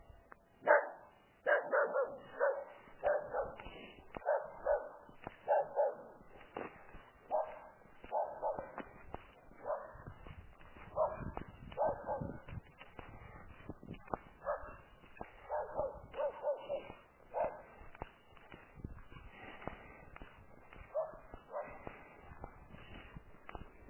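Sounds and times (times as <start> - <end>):
puppy barking: 0.6 - 3.6, 4.2 - 6.2, 7.3 - 8.8, 9.6 - 10.1, 10.9 - 12.3, 14.4 - 14.8, 15.5 - 17.7, 20.9 - 21.7.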